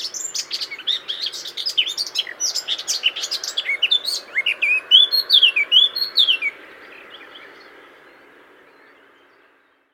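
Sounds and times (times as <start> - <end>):
Eurasian blackcap song: 0.0 - 9.9.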